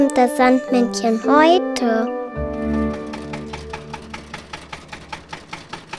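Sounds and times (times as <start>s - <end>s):
speech: 0.2s - 2.1s
tractor engine chugging: 2.9s - 5.9s.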